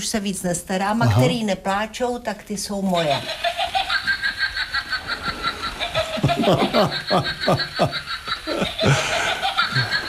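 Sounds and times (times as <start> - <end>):
speech: 0.0 - 3.6, 6.3 - 9.0
imitated witch cackle with high-pitched laughing bursts: 3.0 - 10.0.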